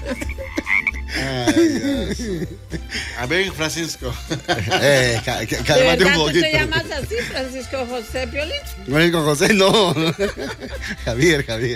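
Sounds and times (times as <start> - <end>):
toad croaking in low raspy calls: 0.0 - 1.1
laughter: 0.0 - 7.6, 9.4 - 11.5
speech: 1.2 - 11.7.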